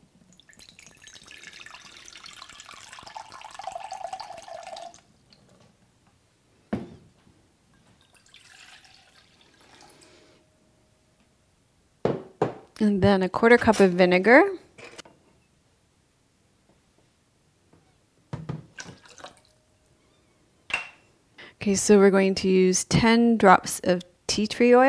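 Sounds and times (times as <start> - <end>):
water running from a tap into a cup: 0.3 - 5.0, 8.0 - 10.2, 18.8 - 19.5
speech: 12.8 - 14.6, 21.7 - 24.8.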